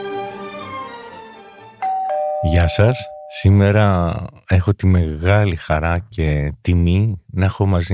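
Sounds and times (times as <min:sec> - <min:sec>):
doorbell chiming: 0:01.8 - 0:03.6
speech: 0:02.5 - 0:07.9.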